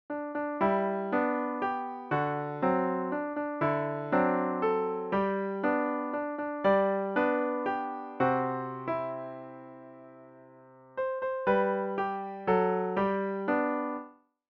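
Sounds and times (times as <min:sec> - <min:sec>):
intermediate piano playing: 0:00.1 - 0:14.1.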